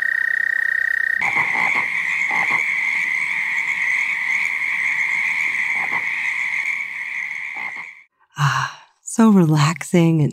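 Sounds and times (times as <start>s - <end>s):
chorus of toads trilling at a pond: 0.0s - 8.1s
speech: 9.2s - 10.3s.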